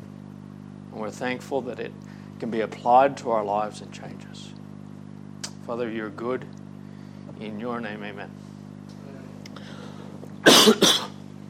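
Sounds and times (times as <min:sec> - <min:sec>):
faint steady hum: 0:00.0 - 0:11.4
speech: 0:01.0 - 0:04.6, 0:05.7 - 0:06.6, 0:07.4 - 0:08.5
harsh coughs: 0:10.4 - 0:11.2.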